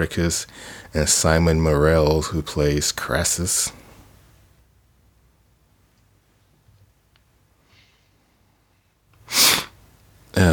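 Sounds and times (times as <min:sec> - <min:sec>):
speech: 0:00.0 - 0:03.8
breath intake: 0:09.2 - 0:09.8
sneeze: 0:09.3 - 0:09.8.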